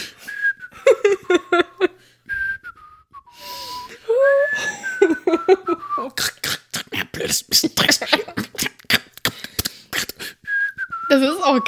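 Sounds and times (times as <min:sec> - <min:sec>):
person whistling a short breezy tune: 0:00.0 - 0:06.2, 0:10.2 - 0:11.6
laughter: 0:00.8 - 0:02.0, 0:04.2 - 0:06.0, 0:07.2 - 0:10.2
speech: 0:11.1 - 0:11.6.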